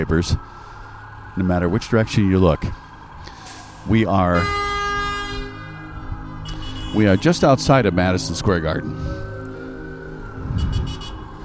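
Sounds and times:
speech: 0.0s - 0.6s, 1.4s - 2.8s, 3.8s - 4.6s, 6.9s - 9.2s
downtown New York City traffic with taxicabs outside Madison Square Garden: 0.0s - 11.4s.

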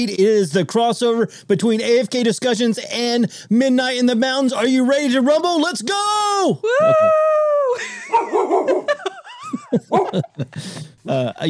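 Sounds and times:
speech: 0.0s - 11.4s
laughter: 6.8s - 11.0s
dog yipping, barking and whimpering: 8.1s - 8.9s.

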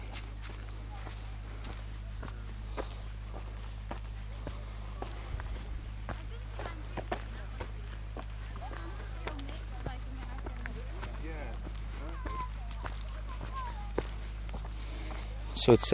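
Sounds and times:
footsteps of people walking on a crowded beach at Durdle Door: 0.0s - 15.9s
low steady hum: 0.0s - 15.9s.

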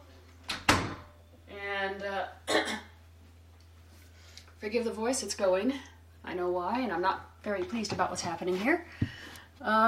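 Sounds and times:
door thudding shut: 0.5s - 1.1s
speech: 4.6s - 9.8s.

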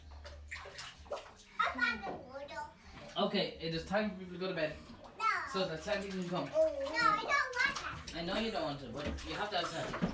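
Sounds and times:
water sloshing and splashing in a bathtub: 0.0s - 10.1s
child's voice: 1.6s - 2.9s, 5.2s - 5.6s, 6.5s - 8.1s
speech: 3.2s - 4.9s, 5.5s - 7.5s, 8.2s - 10.1s.

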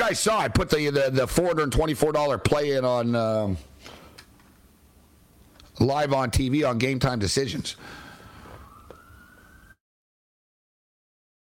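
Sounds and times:
speech: 0.1s - 4.0s, 5.8s - 8.0s
emergency vehicle siren passing outside: 8.2s - 9.8s.

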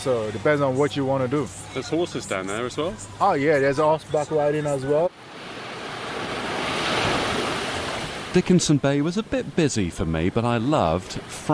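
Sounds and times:
speech: 0.0s - 5.4s, 8.4s - 11.5s
waves washing onto a sandy beach: 5.2s - 8.5s.

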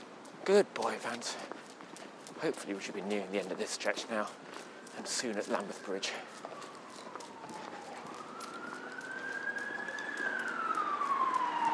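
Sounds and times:
traffic rumble: 0.0s - 11.7s
speech: 0.5s - 1.6s, 2.4s - 6.5s
emergency vehicle siren wailing on a road by a river bridge: 2.7s - 11.7s.

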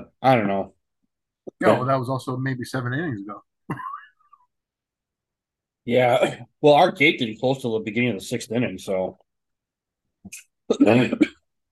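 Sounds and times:
speech: 0.2s - 0.8s, 1.6s - 3.9s, 5.8s - 9.2s, 10.2s - 11.3s
person coughing: 3.7s - 4.2s, 10.7s - 11.4s.

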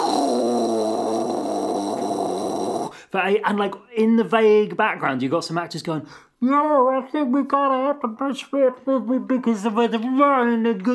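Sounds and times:
voice imitating the low rumble of a big water tank: 0.0s - 2.9s
speech: 3.1s - 10.9s.

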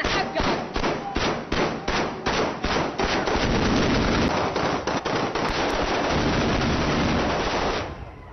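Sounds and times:
celebratory anti-aircraft gunfire: 0.0s - 8.0s.

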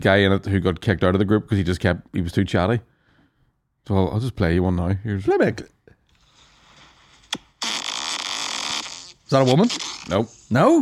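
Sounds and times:
speech: 0.0s - 2.9s, 3.8s - 5.8s, 9.3s - 10.8s
recorded fart played through a small phone speaker: 6.8s - 10.3s.

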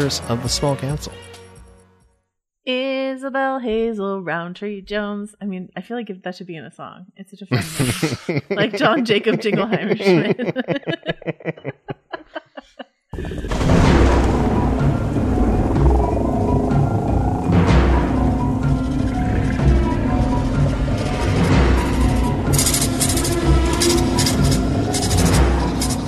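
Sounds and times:
speech: 0.0s - 1.3s, 2.6s - 11.0s
short vocal bursts: 7.5s - 8.9s
laughter: 7.5s - 13.5s
deep rumbling thunder: 13.2s - 25.9s.

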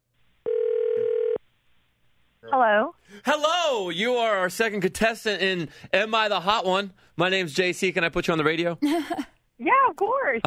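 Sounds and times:
electronic telephone ringing tone as a call goes out: 0.4s - 1.4s
speech: 2.5s - 10.4s.

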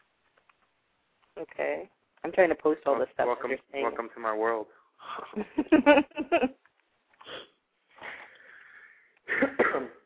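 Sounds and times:
speech: 1.4s - 6.6s
drawn-out wheezy breath: 7.2s - 9.3s
person sniffing: 7.2s - 9.5s
harsh coughing fit: 9.3s - 10.0s.

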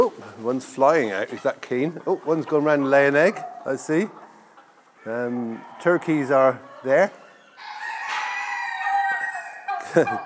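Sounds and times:
speech: 0.4s - 4.2s, 5.0s - 7.8s, 10.0s - 10.2s
rooster crowing in a backyard flock: 7.5s - 10.0s.

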